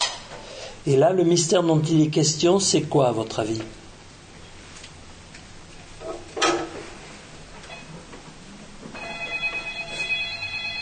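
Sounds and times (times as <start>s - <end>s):
speech: 0.8s - 3.8s
telephone ringing with a bright warbling electronic tone: 8.9s - 10.8s.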